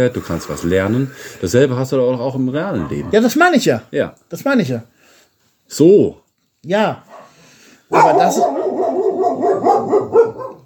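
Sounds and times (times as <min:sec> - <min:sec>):
speech: 0:00.0 - 0:04.9, 0:05.7 - 0:07.1, 0:07.9 - 0:08.6
dog barking: 0:07.1 - 0:10.6.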